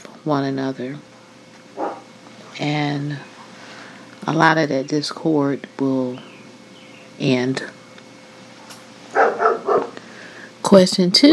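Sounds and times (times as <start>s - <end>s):
speech: 0.2s - 1.1s, 2.6s - 3.3s, 4.2s - 6.3s, 7.2s - 7.8s, 10.7s - 11.3s
neighbour's dog barking: 1.8s - 2.6s, 9.1s - 10.0s.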